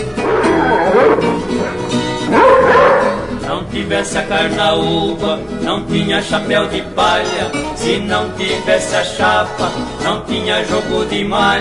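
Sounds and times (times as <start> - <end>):
dog barking and yipping: 0.0 - 3.4
speech: 3.8 - 11.5.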